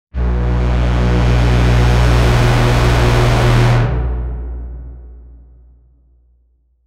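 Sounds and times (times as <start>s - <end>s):
long warning alarm horn blast: 0.1s - 5.2s.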